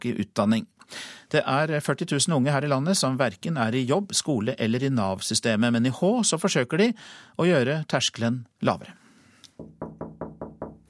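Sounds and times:
speech: 0.0s - 9.0s, 9.6s - 9.8s
firm knocks on a hard surface: 9.6s - 10.8s.

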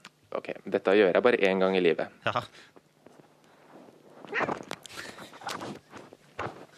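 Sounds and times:
speech: 0.3s - 2.8s, 4.3s - 5.1s
sharp rustles: 3.0s - 6.7s
cat scrambling away after its tail is pulled: 4.2s - 4.8s.

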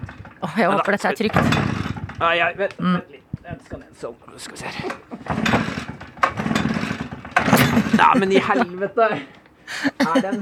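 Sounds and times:
small petrol engine sputtering and revving as it is pull-started: 0.0s - 2.6s, 4.9s - 8.6s
speech: 0.4s - 5.7s, 7.9s - 9.4s, 10.1s - 10.4s
laughter: 4.5s - 5.4s, 7.6s - 10.4s.

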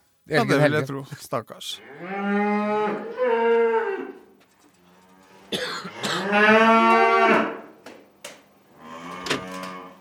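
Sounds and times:
speech: 0.3s - 3.2s, 6.3s - 6.9s
cows mooing: 1.8s - 4.2s, 4.9s - 7.7s, 8.8s - 9.9s.

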